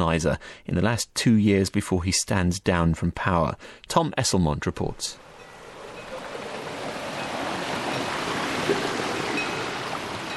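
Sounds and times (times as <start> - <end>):
speech: 0.0 - 5.3
fast-flowing mountain river rushing: 5.2 - 10.3.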